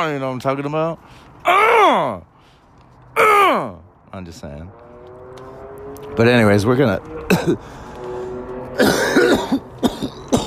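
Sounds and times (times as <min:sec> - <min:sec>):
speech: 0:00.0 - 0:02.3, 0:03.2 - 0:04.8, 0:06.1 - 0:07.8, 0:08.8 - 0:09.6
person coughing in a rough raspy burst: 0:07.3 - 0:07.7, 0:08.8 - 0:10.4
throat clearing: 0:07.3 - 0:07.7, 0:08.8 - 0:10.4.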